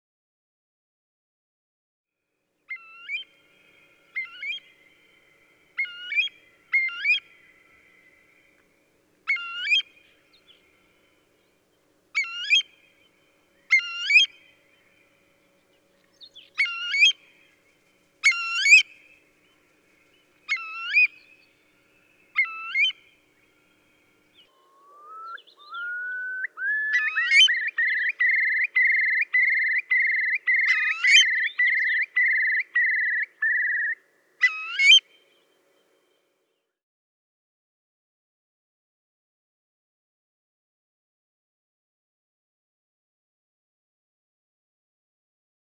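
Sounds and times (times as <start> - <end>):
Eurasian curlew call: 2.7 - 8.6, 9.2 - 10.8, 12.1 - 15.2, 16.0 - 17.6, 18.2 - 35.4.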